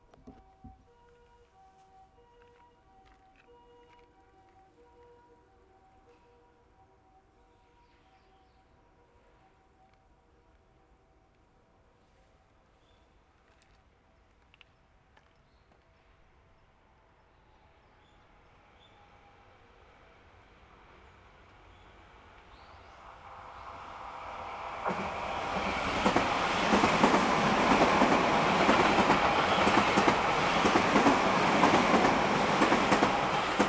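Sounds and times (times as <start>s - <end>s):
train passing on a curve: 16.9s - 33.6s.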